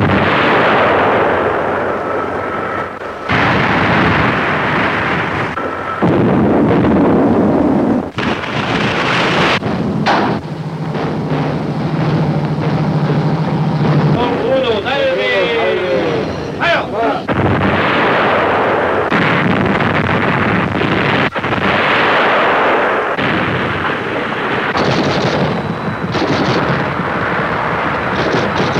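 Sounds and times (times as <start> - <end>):
German navy cruiser firing gun salvos: 0.0 - 28.7
men shouting orders: 14.3 - 17.3.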